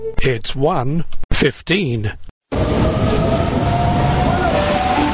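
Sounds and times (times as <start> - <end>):
speech: 0.2 - 2.3
train rumbling at a station platform: 2.5 - 5.1.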